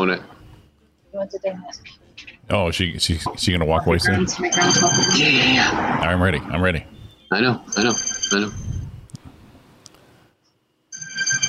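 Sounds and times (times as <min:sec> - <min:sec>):
speech: 0:00.0 - 0:00.3, 0:01.2 - 0:08.8
mobile phone ringtone bright layered electronic melody: 0:04.1 - 0:05.6, 0:07.7 - 0:08.6, 0:10.9 - 0:11.4.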